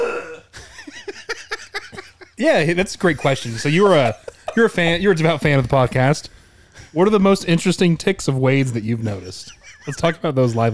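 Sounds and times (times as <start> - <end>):
loud voiced burp with a low gurgling tone: 0.0 - 0.6
laughter: 0.5 - 10.7
speech: 2.4 - 10.7
short breathy bursts: 6.2 - 7.1.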